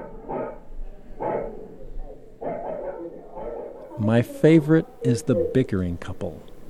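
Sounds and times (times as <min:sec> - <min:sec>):
dog barking behind a closed apartment door: 0:00.0 - 0:04.0
speech: 0:04.0 - 0:06.5.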